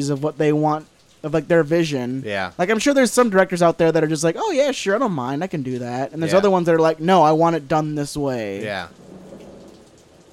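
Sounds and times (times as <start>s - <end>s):
speech: 0.0s - 9.1s
heavy rain outside: 0.0s - 10.3s.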